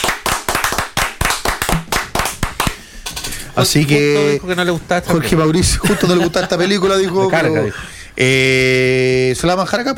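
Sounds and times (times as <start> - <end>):
small group applauding: 0.0 - 2.8
speech: 3.6 - 9.9
laughter: 5.6 - 7.9.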